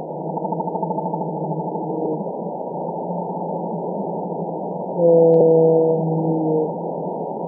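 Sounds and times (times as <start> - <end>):
Eastern North Pacific blue whale calls: 0.2 - 2.2, 5.0 - 6.8.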